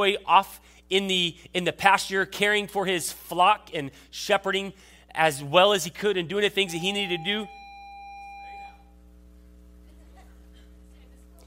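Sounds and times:
speech: 0.0s - 7.6s
electric school bell or buzzer ringing: 6.6s - 9.0s.

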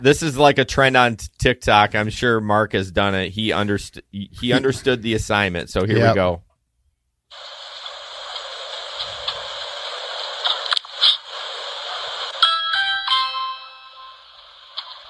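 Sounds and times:
speech: 0.0s - 6.5s
steady hissing noise: 7.3s - 15.0s
doorbell electronic chime: 12.4s - 14.2s.

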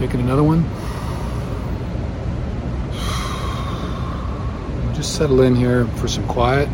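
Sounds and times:
speech: 0.0s - 0.8s, 5.0s - 6.7s
deep breath in and exhale: 0.7s - 2.1s, 2.8s - 4.9s.

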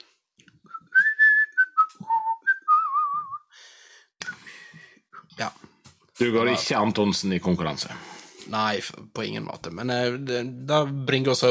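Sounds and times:
person whistling a short bouncy jingle melody: 0.7s - 3.5s
speech: 5.4s - 5.6s, 6.2s - 11.5s.

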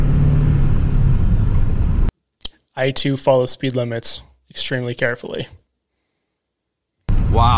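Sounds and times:
truck engine under throttle pulling a heavy trailer at 45 mph: 0.0s - 2.1s
speech: 2.8s - 5.6s, 7.3s - 7.5s.

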